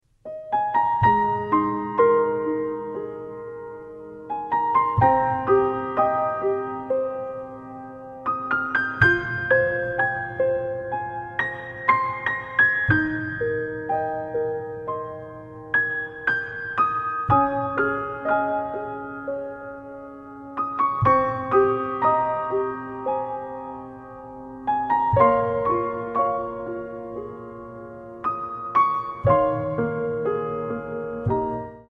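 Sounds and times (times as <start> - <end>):
piano piece: 0.0 - 31.9.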